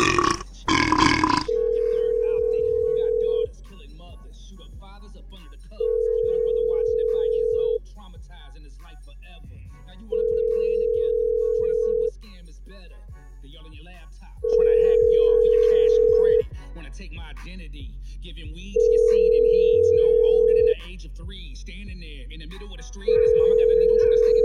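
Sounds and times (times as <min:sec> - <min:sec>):
loud rough gurgling burping: 0:00.0 - 0:01.6
telephone ring tone: 0:01.3 - 0:03.5, 0:05.9 - 0:07.8, 0:10.2 - 0:12.1, 0:14.5 - 0:16.4, 0:18.8 - 0:20.8, 0:23.2 - 0:24.4.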